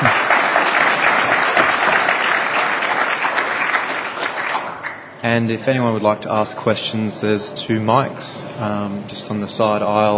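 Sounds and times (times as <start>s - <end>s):
audience applause: 0.0s - 5.1s
speech: 5.2s - 10.1s.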